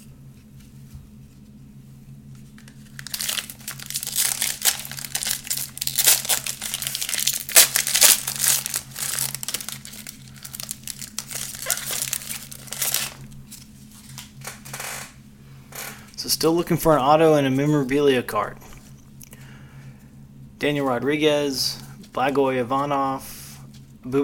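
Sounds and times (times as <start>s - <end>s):
low steady hum: 0.0s - 24.2s
trading card pack foil wrapper being torn open and crumpled: 2.6s - 14.3s
speech: 16.4s - 18.6s, 20.6s - 23.3s, 24.0s - 24.2s.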